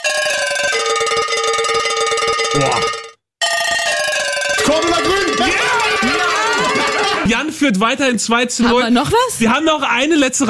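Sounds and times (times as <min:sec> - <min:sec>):
cowbell playing an Oktoberfest party hit: 0:00.0 - 0:07.0
speech: 0:02.6 - 0:03.0, 0:07.6 - 0:10.4
laughter: 0:04.8 - 0:07.7.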